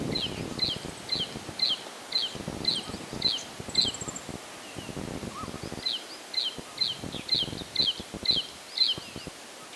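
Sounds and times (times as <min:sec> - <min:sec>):
Black throated Prinia Prinia atrogularis: 0:00.1 - 0:09.7.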